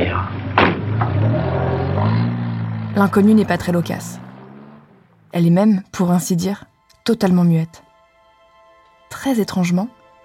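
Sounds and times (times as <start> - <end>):
car engine starting and car driving off: 0.0 - 5.6
speech: 3.0 - 4.3, 5.3 - 7.8, 9.1 - 10.0.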